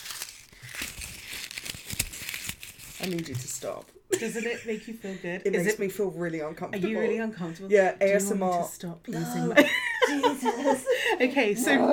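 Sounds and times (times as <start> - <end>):
paper being crumpled and crunched on a table: 0.0 - 3.9
speech: 3.0 - 11.9
laughter: 9.4 - 11.9.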